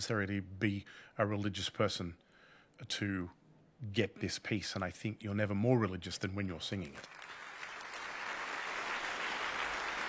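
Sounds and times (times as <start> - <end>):
speech: 0.0 - 2.2, 2.8 - 7.4
dense applause from a large concert audience: 7.0 - 10.0.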